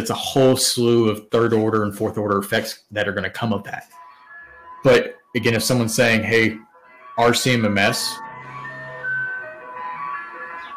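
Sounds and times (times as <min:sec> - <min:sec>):
speech: 0:00.0 - 0:04.0, 0:04.8 - 0:08.2
tinny ice cream truck jingle playing outside on a sunny day in the UK: 0:03.9 - 0:10.7.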